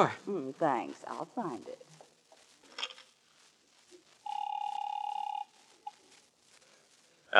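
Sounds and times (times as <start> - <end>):
speech: 0.0 - 1.9
telephone ringing: 4.3 - 5.6.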